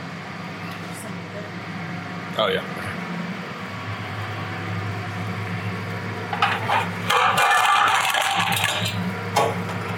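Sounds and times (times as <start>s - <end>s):
steady low kitchen hum: 0.0s - 9.9s
speech: 2.4s - 2.9s
large frying pan scraping rattle: 6.3s - 9.0s.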